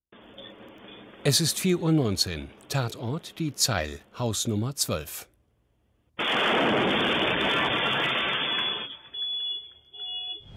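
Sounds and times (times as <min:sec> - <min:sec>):
speech: 0:01.2 - 0:05.3
loud explosion of a shisha lounge: 0:06.2 - 0:09.0
rumbling debris: 0:06.2 - 0:09.2.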